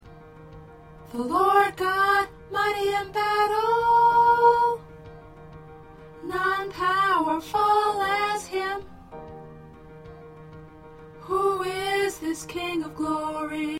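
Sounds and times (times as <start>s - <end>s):
soprano singing: 1.0s - 5.1s, 6.2s - 9.3s, 11.2s - 13.7s.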